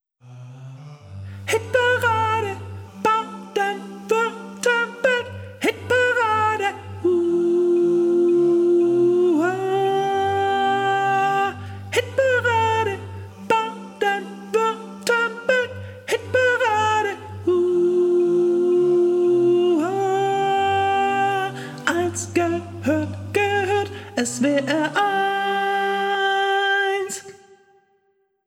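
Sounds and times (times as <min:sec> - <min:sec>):
soprano singing jingle: 0:01.4 - 0:27.4.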